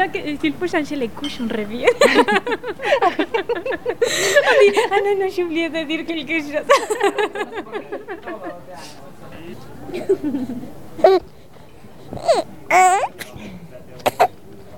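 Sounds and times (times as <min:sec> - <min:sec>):
speech: 0:00.0 - 0:09.0, 0:09.6 - 0:11.2, 0:12.3 - 0:13.2
laughter: 0:01.8 - 0:05.4, 0:06.5 - 0:09.0, 0:09.8 - 0:11.2
baby babbling: 0:11.0 - 0:11.3, 0:12.1 - 0:13.2, 0:14.0 - 0:14.3
baby squealing: 0:12.1 - 0:13.2, 0:14.1 - 0:14.3.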